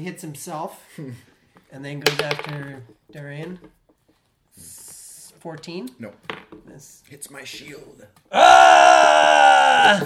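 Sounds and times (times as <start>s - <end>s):
speech: 0.0s - 3.8s, 5.4s - 10.0s
man yelling in character during a tabletop role-playing game: 8.3s - 10.0s.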